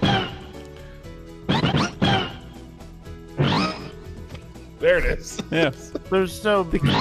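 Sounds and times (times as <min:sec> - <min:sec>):
steady electronic tonal backdrop: 0:00.0 - 0:05.7, 0:06.4 - 0:06.9
speech: 0:04.8 - 0:06.9
cartoonish video game character voice clips: 0:06.8 - 0:06.9.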